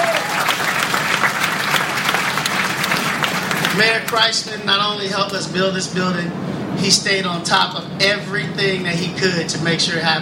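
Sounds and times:
audience applause: 0.0s - 4.2s
speech: 3.8s - 10.2s.

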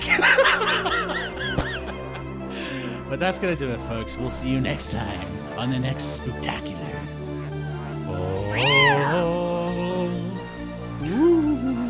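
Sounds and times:
laughter: 0.0s - 2.4s, 11.0s - 11.8s
speech: 3.1s - 7.2s
cat meowing: 8.3s - 9.4s.

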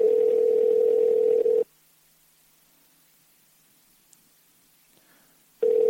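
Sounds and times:
phone outgoing ringback tone: 0.0s - 1.6s, 5.6s - 5.8s.

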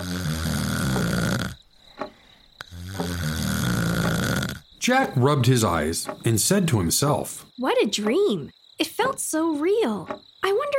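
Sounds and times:
loud rasping snoring: 0.0s - 1.6s, 2.6s - 4.7s
speech: 4.8s - 10.7s.

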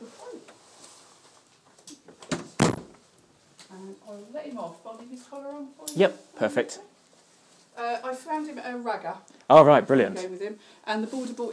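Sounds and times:
door pushed shut with thuds: 2.3s - 3.0s
speech: 4.1s - 6.9s, 7.8s - 11.5s.

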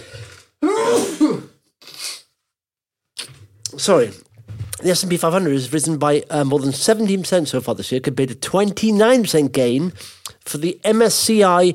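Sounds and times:
person sneezing: 0.6s - 2.4s
speech: 3.8s - 11.7s.

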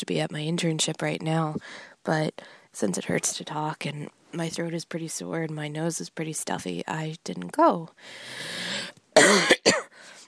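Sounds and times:
speech: 0.0s - 8.7s
harsh chesty coughing from a person with a cold and sore throat: 9.2s - 10.0s.

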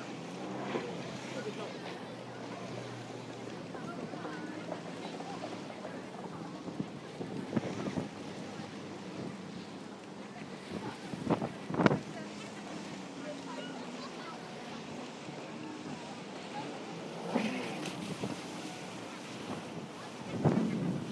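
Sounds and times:
boat rushing over choppy sea waves: 0.0s - 21.1s
steady wash of wind and water: 0.0s - 21.1s.

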